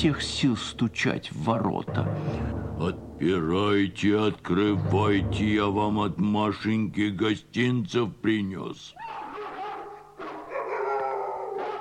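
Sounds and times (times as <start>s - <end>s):
speech: 0.0s - 9.2s
village dogs barking at a bear: 9.1s - 11.8s.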